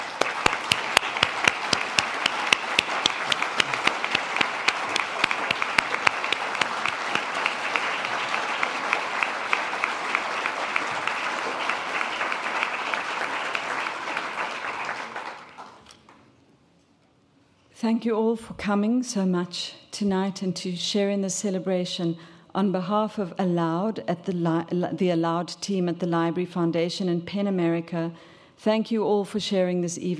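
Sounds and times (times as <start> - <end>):
audience applauding: 0.0 - 15.8
speech: 17.9 - 30.1.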